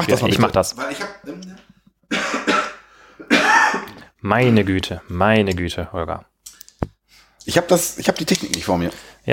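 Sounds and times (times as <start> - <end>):
speech: 0.0 - 1.5, 4.2 - 6.3, 7.4 - 9.3
harsh coughs: 2.1 - 4.0.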